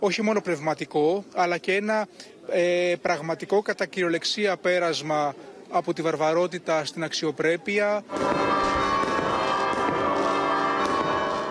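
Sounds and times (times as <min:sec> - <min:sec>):
speech: 0:00.0 - 0:08.8
dense continuous ringing bells: 0:08.1 - 0:11.4
firework bursts exploding in the night sky: 0:08.1 - 0:11.4.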